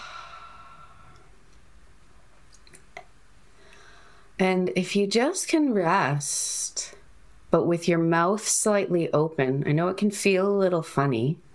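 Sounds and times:
soft drawn-out yawn with a gentle voiced tone: 0.0s - 1.2s
speech: 4.4s - 11.4s.

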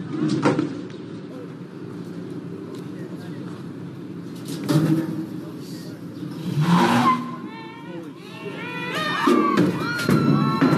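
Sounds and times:
crowd noise at a university: 0.0s - 10.7s
crowd shouting: 7.0s - 10.7s.

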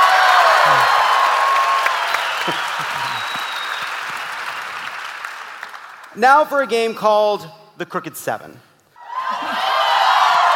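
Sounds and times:
crowd cheers and whoops: 0.0s - 4.2s, 9.0s - 10.5s
audience applauding: 0.0s - 6.2s, 9.2s - 10.5s
speech: 6.2s - 8.7s.

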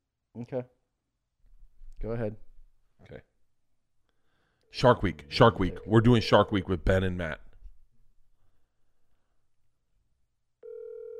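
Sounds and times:
speech: 0.4s - 0.8s, 2.0s - 3.3s, 4.7s - 7.4s
loud steady electronic phone ringback tone: 10.6s - 11.1s.

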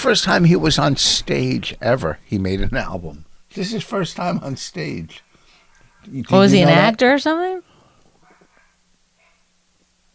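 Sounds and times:
speech: 0.0s - 5.2s, 6.0s - 7.7s
low steady hum: 0.0s - 8.2s
dog barking: 8.2s - 9.6s.

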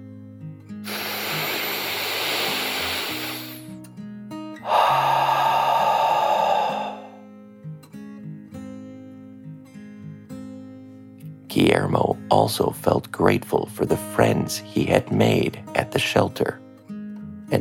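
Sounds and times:
long deep breath in and slightly voiced breath out: 0.9s - 3.7s, 4.6s - 7.3s
soft musical backing: 2.5s - 17.6s
speech: 11.6s - 16.6s.

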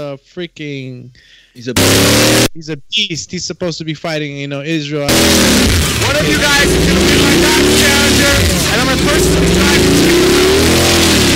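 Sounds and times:
speech: 0.0s - 11.2s
car engine revving: 1.8s - 2.6s, 5.1s - 11.3s.

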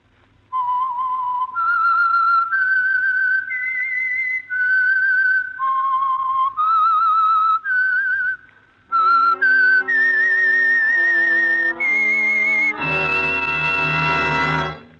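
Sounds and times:
whistled theme melody: 0.6s - 14.8s
orchestra playing a full chord: 9.0s - 14.9s.

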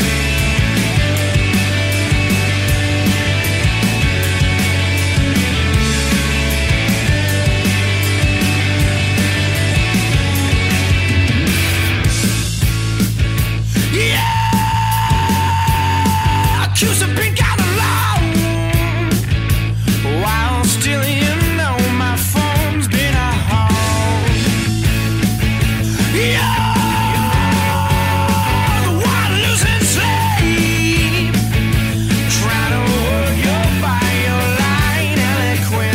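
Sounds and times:
loud dense punk rock with pounding drums and distorted guitars: 0.0s - 35.9s
raw screamed vocal in a punk rock song: 13.8s - 16.8s, 26.1s - 30.4s.

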